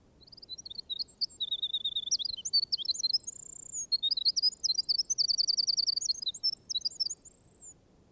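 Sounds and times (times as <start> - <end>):
low hiss: 0.0 - 8.0
wren singing: 0.2 - 7.8.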